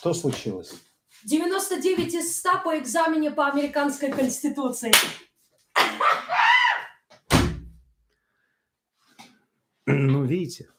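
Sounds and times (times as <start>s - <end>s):
speech: 0.0s - 6.2s, 9.9s - 10.7s
short excited vocal outburst: 5.8s - 7.1s
door bursting open with a heavy booming bang: 7.3s - 7.8s.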